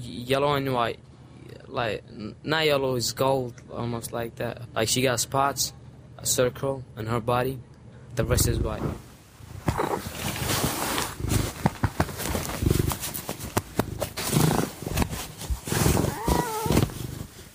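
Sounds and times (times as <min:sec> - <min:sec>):
speech: 0:00.3 - 0:01.1, 0:01.7 - 0:09.1
gold-and-white cat purring while being petted: 0:08.2 - 0:17.4
hands moving through cat fur with rustles and clicks: 0:09.7 - 0:17.5.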